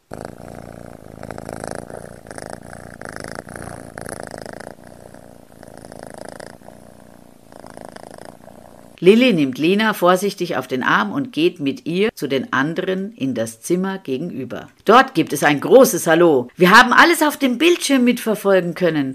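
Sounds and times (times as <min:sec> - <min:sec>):
cat purring loudly: 0:00.0 - 0:09.0
speech: 0:09.0 - 0:19.1.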